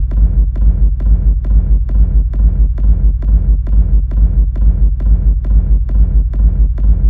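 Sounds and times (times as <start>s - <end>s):
techno bass loop in G at 135 BPM: 0.0s - 7.0s.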